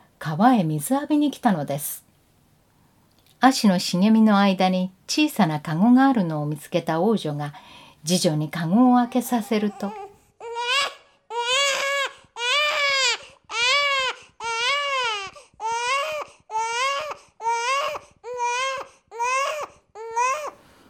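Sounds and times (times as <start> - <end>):
speech: 0.2 - 2.0, 3.4 - 10.0
baby crying: 8.8 - 20.6.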